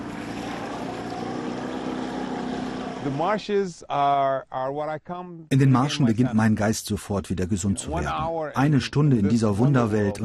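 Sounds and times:
water wash from a boat travelling through marshes: 0:00.0 - 0:03.2
boat motor droning while travelling through marshes: 0:00.0 - 0:03.3
speech: 0:03.0 - 0:10.2.

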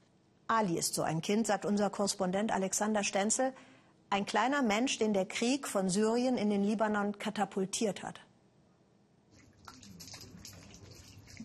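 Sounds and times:
speech: 0:00.5 - 0:08.3
cold water splashed by a boy washing in a refugee camp in Lebanon: 0:09.4 - 0:11.4.

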